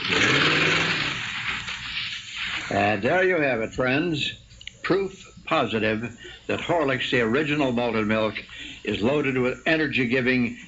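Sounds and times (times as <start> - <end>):
car engine revving hard and racing away: 0.1 - 1.3
speech: 2.7 - 10.6.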